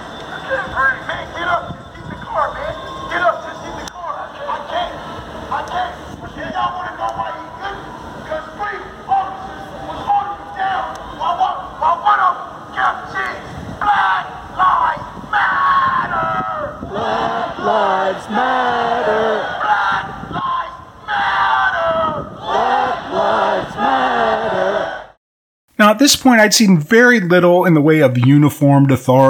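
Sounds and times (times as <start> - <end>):
amplified bullhorn voices leading the calls: 0.0 - 25.1
speech: 0.5 - 1.8, 26.0 - 29.2
large protest crowd chanting outdoors: 3.7 - 15.3, 16.0 - 25.2.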